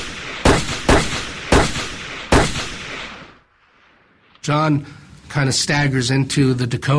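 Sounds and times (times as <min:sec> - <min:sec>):
gunshots from a single gun with decaying echo: 0:00.0 - 0:03.5
speech: 0:04.4 - 0:06.9.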